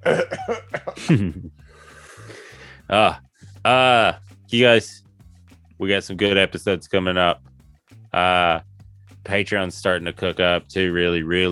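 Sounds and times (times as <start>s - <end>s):
laughter: 0.0s - 1.5s
person coughing throatily: 0.0s - 1.5s
speech: 1.1s - 1.4s, 2.9s - 5.0s, 5.8s - 7.5s, 8.1s - 11.5s.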